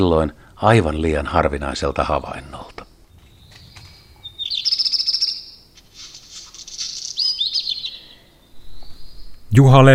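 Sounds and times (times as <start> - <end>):
speech: 0.0 - 2.9, 9.5 - 9.9
black redstart singing scratchy phrases with crackling trills: 2.8 - 5.7, 6.9 - 9.5.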